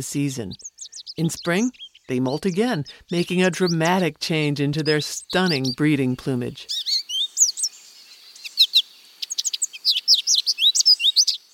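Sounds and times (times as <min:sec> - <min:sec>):
speech: 0:00.0 - 0:06.8
American goldfinch singing high sweet twittering notes and chirps: 0:00.0 - 0:11.5.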